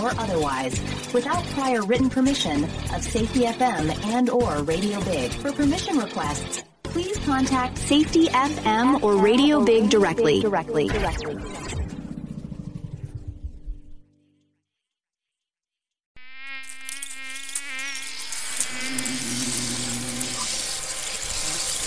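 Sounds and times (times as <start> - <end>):
speech: 0.0 - 11.6
many bugs buzzing: 16.2 - 21.8.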